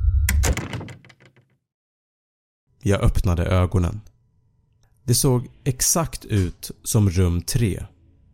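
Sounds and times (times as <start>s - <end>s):
low hum: 0.0s - 0.6s
room door shut with a solid thump: 0.0s - 1.3s
speech: 2.8s - 4.1s, 5.1s - 7.9s.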